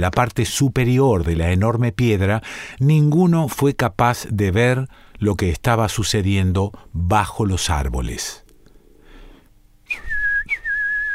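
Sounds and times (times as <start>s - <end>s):
speech: 0.0s - 8.4s
loud piercing human whistles through tightly pursed lips: 9.9s - 11.1s.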